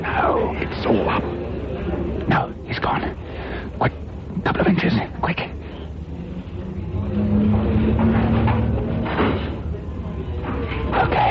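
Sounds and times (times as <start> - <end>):
faint voices: 0.0 - 11.2
steady mechanical hum: 0.0 - 11.2
door rumbling open or shut: 6.9 - 10.6.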